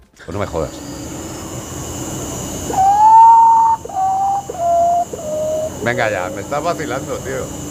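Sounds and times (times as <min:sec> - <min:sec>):
speech: 0:00.2 - 0:01.0, 0:02.7 - 0:02.9, 0:05.8 - 0:07.7
potoo bird mournful whistled call: 0:02.7 - 0:06.3.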